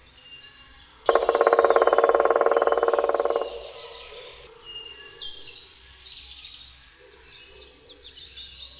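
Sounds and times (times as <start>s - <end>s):
black woodpecker drumming: 1.1s - 4.5s.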